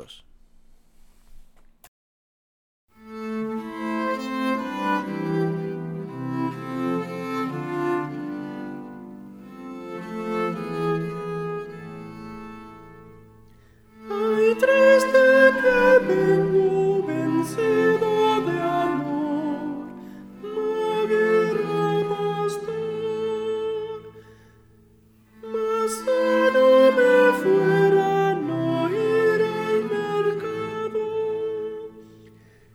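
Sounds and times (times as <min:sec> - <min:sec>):
sopranos and altos singing: 0:03.2 - 0:09.0, 0:14.0 - 0:24.3, 0:25.4 - 0:32.2.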